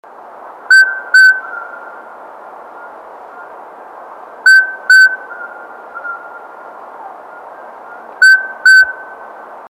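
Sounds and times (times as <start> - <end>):
Otus spilocephalus calling: 0.7 - 2.1, 4.5 - 9.2.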